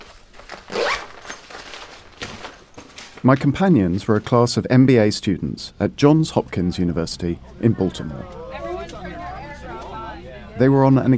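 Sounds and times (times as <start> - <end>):
zips being pulled while packing: 0.0 - 2.2
speech: 3.2 - 8.4, 10.6 - 11.1.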